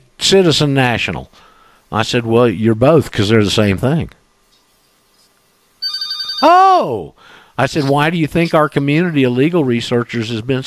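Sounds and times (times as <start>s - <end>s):
speech: 0.2s - 4.2s, 6.4s - 10.6s
telephone ringing with a bright electronic trill: 5.8s - 6.7s.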